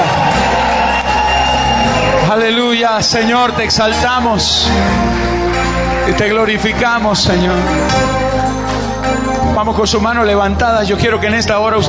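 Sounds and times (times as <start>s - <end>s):
audience shouting and cheering with joy: 0.0s - 9.8s
speech: 2.3s - 5.4s, 6.1s - 8.3s, 9.6s - 11.8s.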